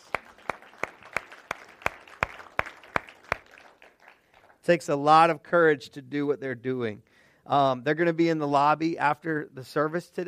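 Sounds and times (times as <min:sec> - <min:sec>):
church audience applauding a young married couple during a service: 0:00.0 - 0:04.7
sharp steady clap: 0:00.0 - 0:04.7
speech: 0:04.7 - 0:10.2.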